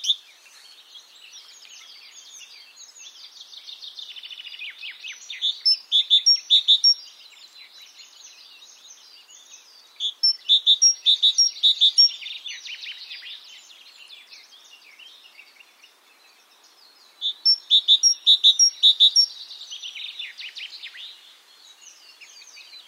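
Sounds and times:
Great tit Parus major repeating a two-part ringing phrase: 0:05.1 - 0:07.2, 0:08.8 - 0:12.7, 0:16.5 - 0:20.2.

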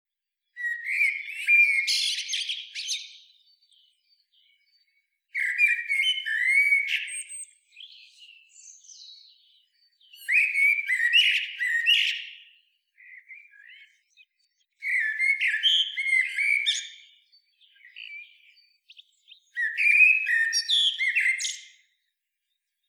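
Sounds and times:
common blackbird Turdus merula singing: 0:00.6 - 0:22.1.

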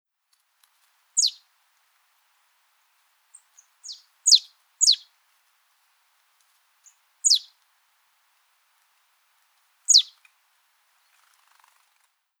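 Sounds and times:
marsh tit Poecile palustris calling: 0:01.2 - 0:01.4, 0:03.8 - 0:05.0, 0:07.2 - 0:07.5, 0:09.9 - 0:10.1.

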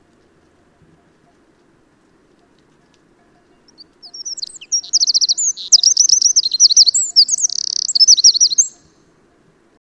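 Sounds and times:
Eurasian wren Troglodytes troglodytes song with trills and sharp notes: 0:03.2 - 0:09.1.

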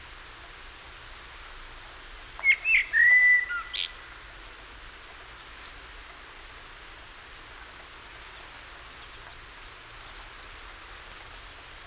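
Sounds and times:
common blackbird Turdus merula whistling: 0:02.4 - 0:04.3.

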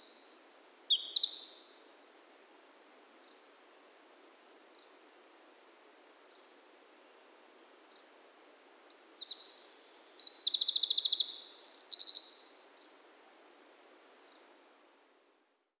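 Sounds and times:
Eurasian wren Troglodytes troglodytes singing trills: 0:00.0 - 0:01.8, 0:08.7 - 0:13.4.

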